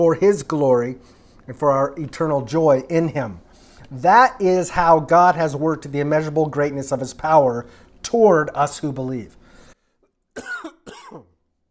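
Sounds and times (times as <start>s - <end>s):
speech: 0.0s - 9.4s, 10.4s - 11.3s
person coughing harshly: 10.4s - 11.4s.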